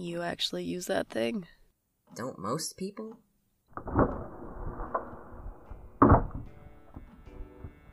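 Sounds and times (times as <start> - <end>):
speech: 0.0 - 4.2
unlocked wooden door opening with thumps and clunks: 5.6 - 7.2.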